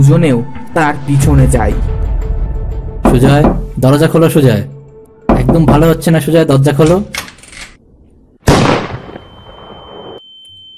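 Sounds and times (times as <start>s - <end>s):
speech: 0.0s - 2.0s, 3.1s - 4.8s, 5.5s - 7.2s
gunshot: 8.4s - 9.4s
high ringing tone: 9.1s - 10.7s.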